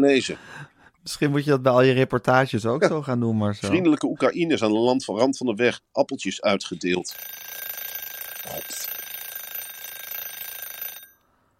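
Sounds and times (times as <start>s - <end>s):
speech: 0.0s - 7.8s
alarm clock ringing in a dense electronic trill: 7.1s - 11.3s.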